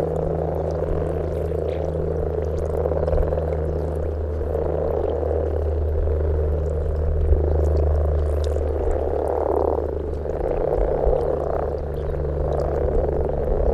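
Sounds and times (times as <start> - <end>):
common frogs in a dense chorus of low purring grumbles: 0.0 - 13.7
steady low hum: 0.0 - 13.7.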